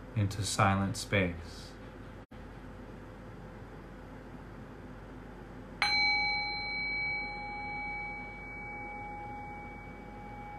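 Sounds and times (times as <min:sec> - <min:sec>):
speech: 0:00.2 - 0:01.7
single bell strike ringing out: 0:05.8 - 0:10.5.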